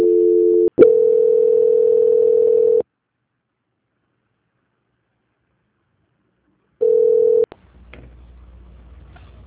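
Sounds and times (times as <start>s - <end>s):
steady telephone tone while a call is transferred: 0.0s - 2.8s, 6.8s - 7.5s.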